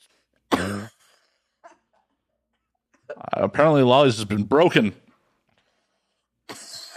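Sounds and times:
loud cough with a rough voiced edge: 0.5s - 2.1s
speech: 3.4s - 5.0s.

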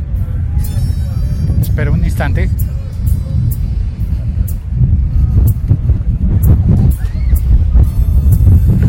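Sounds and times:
strong wind buffeting the microphone outdoors in light drizzle: 0.0s - 8.8s
speech: 1.8s - 2.7s.

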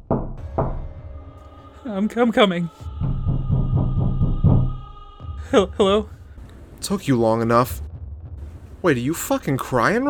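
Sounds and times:
heavy knocking on a door: 0.0s - 1.0s, 3.0s - 4.9s
speech: 1.8s - 2.9s, 5.5s - 6.2s, 6.8s - 7.8s, 8.8s - 10.0s.

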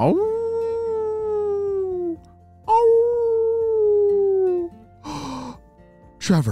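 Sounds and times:
speech: 0.0s - 0.3s, 6.3s - 6.5s
wolves howling: 0.0s - 4.8s.

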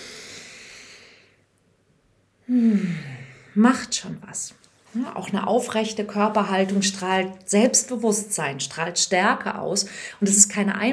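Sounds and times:
slow deep inhalation: 0.0s - 1.4s, 2.5s - 3.5s
speech: 2.5s - 10.9s.

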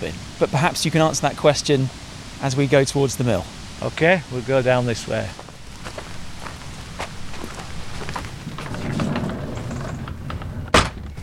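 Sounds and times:
speech: 0.0s - 5.4s
footsteps crunching over cobbles in an old mill: 4.8s - 10.6s
heavy sliding door scraping open: 6.4s - 11.2s.

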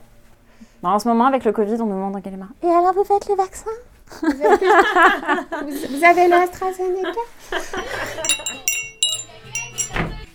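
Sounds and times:
speech: 0.6s - 8.6s
dishes clinking as they are handled to be washed: 8.2s - 10.1s.

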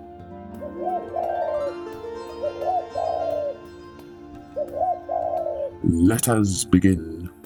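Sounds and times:
dove cooing: 0.5s - 3.7s, 4.6s - 5.8s
speech: 0.6s - 1.4s, 5.8s - 7.2s.

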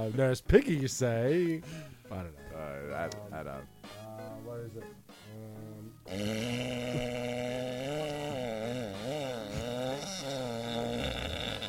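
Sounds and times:
speech: 0.0s - 5.5s, 6.1s - 7.6s
long loud buzzy fart: 6.0s - 11.6s.

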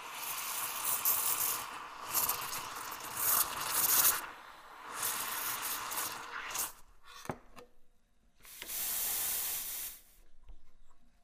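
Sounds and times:
coffee machine steam wand hissing: 0.0s - 6.8s, 8.5s - 10.1s.

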